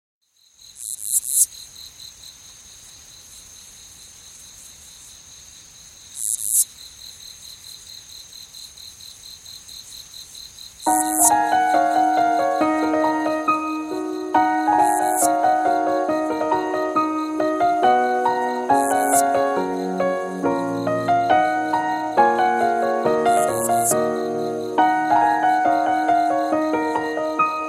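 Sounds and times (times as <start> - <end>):
cricket chirping at night: 0.2 - 27.6
instrumental music: 10.9 - 27.6.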